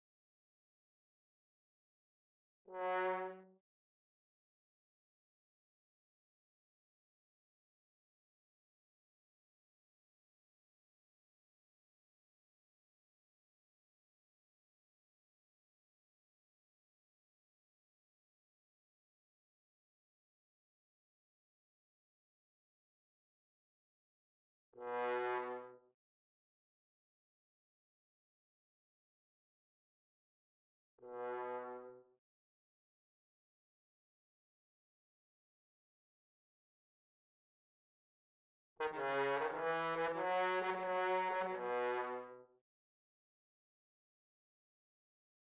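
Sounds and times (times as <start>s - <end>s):
bass trombone: 2.7s - 3.5s, 24.8s - 25.8s, 31.0s - 32.0s, 38.8s - 42.4s.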